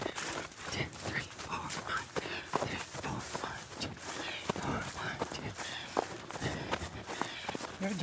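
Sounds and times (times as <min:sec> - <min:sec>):
faint breathing: 0:00.0 - 0:08.0
running footsteps with soft scuff on landing: 0:00.0 - 0:08.0.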